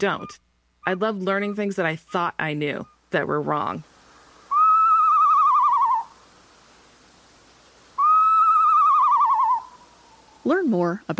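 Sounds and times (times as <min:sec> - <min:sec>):
speech: 0:00.0 - 0:03.9, 0:10.4 - 0:11.1
northern saw-whet owl whistled wails: 0:04.5 - 0:06.2, 0:08.0 - 0:10.5.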